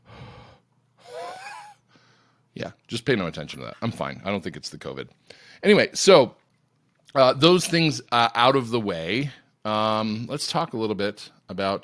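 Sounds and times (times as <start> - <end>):
wheezy asthmatic breathing: 0.0 - 2.5
speech: 2.6 - 6.4, 7.1 - 11.8.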